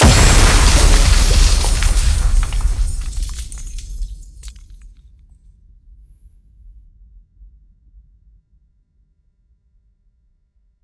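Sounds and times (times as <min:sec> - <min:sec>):
explosion hitting glass: 0:00.0 - 0:04.8.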